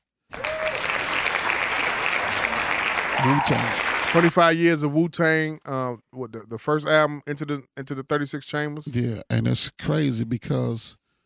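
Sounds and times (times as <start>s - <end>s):
applause from many hands: 0.3s - 4.4s
speech: 3.2s - 11.0s.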